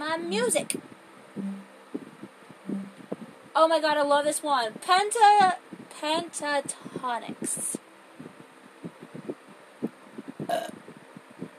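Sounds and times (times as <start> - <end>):
speech: 0.2 - 1.6, 3.6 - 7.7
soft low rhythmic thumps: 1.4 - 3.3
short throaty burp: 10.5 - 10.8.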